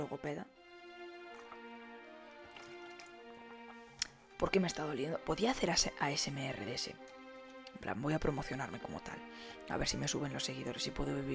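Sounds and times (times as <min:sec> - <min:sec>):
speech: 0:00.0 - 0:00.6, 0:04.4 - 0:07.2, 0:07.8 - 0:11.3
person sipping and swallowing water: 0:00.7 - 0:04.2.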